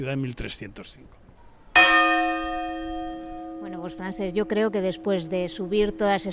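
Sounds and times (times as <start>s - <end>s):
speech: 0.0s - 1.2s, 3.6s - 6.3s
church bell cast in 1305 weighing about 700 to 800 kilograms struck: 1.8s - 6.3s.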